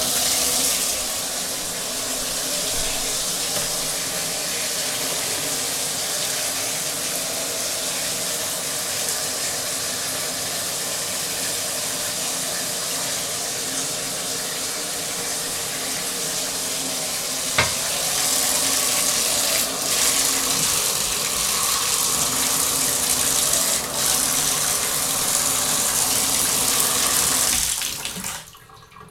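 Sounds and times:
running tap water for washing off: 0.0 - 29.0
tap click: 17.6 - 17.8.

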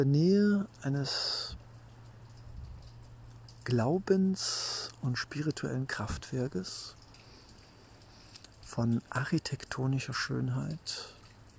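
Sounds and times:
speech: 0.0 - 1.6, 3.7 - 7.0, 8.7 - 11.2
light rain showers pattering in a big city: 0.0 - 11.5
low droning hum: 0.6 - 9.8.

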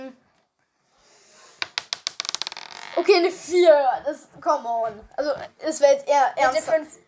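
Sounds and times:
dice clattering onto a hard surface: 1.6 - 3.0
speech: 3.0 - 7.0.

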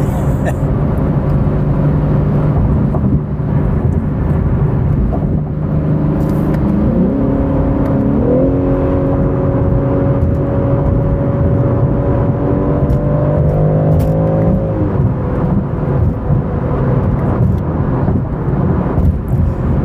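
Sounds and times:
sports car engine revving while cornering at speed: 0.0 - 19.8.

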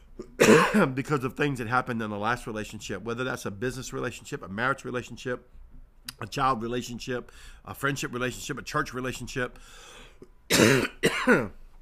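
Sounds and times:
harsh throat-clearing coughs: 0.2 - 0.9, 10.5 - 11.6
speech: 0.5 - 5.6, 6.2 - 11.6.

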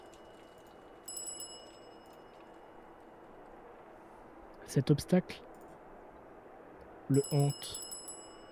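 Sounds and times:
bicycle bell ringing: 0.0 - 2.7, 7.1 - 8.4
speech: 4.7 - 5.5, 7.1 - 7.8.

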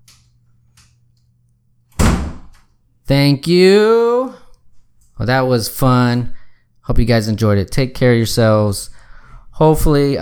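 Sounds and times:
door shutting with a solid boomy thud: 2.0 - 2.6
speech: 3.1 - 4.4, 5.2 - 8.9, 9.6 - 10.2.

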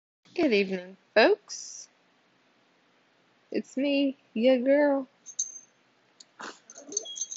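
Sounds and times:
speech: 0.4 - 1.8, 3.5 - 5.1
excited dogs whining: 6.5 - 7.3.

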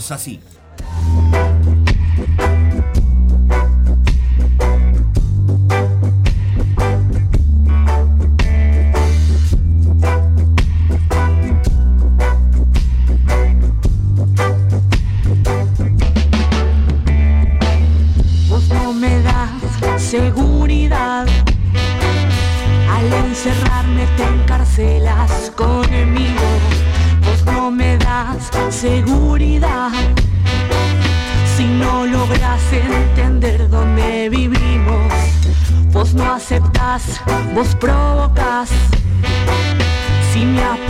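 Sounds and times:
speech: 0.0 - 1.4
new band song with heavy bass line and punchy drums: 0.0 - 40.8.

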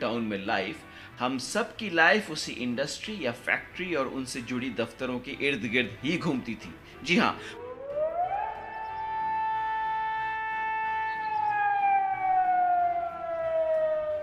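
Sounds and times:
speech: 0.0 - 7.6
factory siren wailing in the industrial town of Rourkela India: 7.6 - 14.2.

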